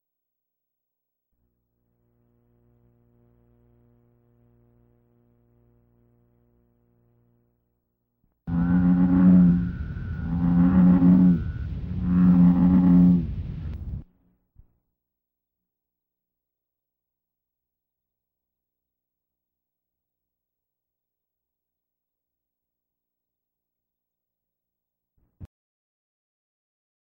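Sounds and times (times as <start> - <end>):
bullfrog croaking: 8.5 - 13.3.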